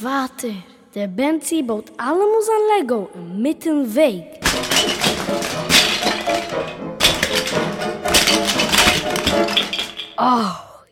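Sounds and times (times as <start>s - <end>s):
speech: 0.0s - 5.6s, 10.2s - 10.6s
many small Lego plastic pieces clattering from a large palace crashing apart: 4.4s - 10.3s.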